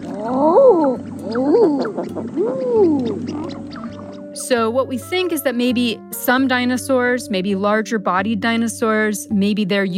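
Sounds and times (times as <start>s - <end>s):
eider duck crooning closed-mouth calls: 1.0s - 4.4s
speech: 4.6s - 9.9s.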